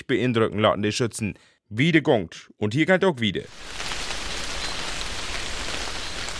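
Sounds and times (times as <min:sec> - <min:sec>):
speech: 0:00.1 - 0:04.0
rain driven in from the side pattering against a surface: 0:03.5 - 0:06.3.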